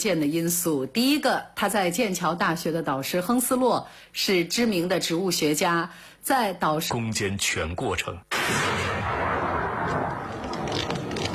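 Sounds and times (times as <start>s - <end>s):
speech: 0.0s - 9.2s
battle gunfire sound effect: 8.3s - 11.3s.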